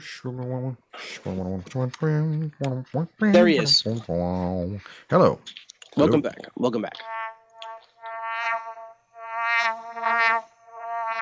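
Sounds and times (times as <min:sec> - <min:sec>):
speech: 0:00.0 - 0:07.2
bees buzzing: 0:07.0 - 0:11.2.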